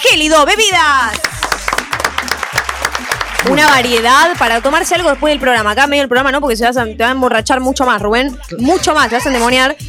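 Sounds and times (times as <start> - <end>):
speech: 0.1 - 1.3, 3.4 - 9.8
small group clapping for new sponsors: 1.0 - 5.9.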